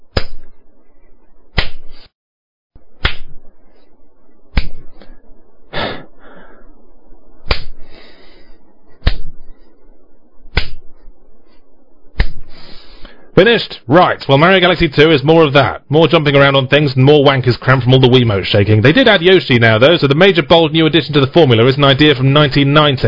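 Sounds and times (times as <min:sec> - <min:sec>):
slapping of own face: 0:00.1 - 0:00.5, 0:01.6 - 0:02.0, 0:03.0 - 0:03.4, 0:04.5 - 0:05.1, 0:07.4 - 0:07.8, 0:09.0 - 0:09.4, 0:10.5 - 0:11.0, 0:12.1 - 0:12.5
low continuous background: 0:02.8 - 0:23.0
speech: 0:13.4 - 0:23.0.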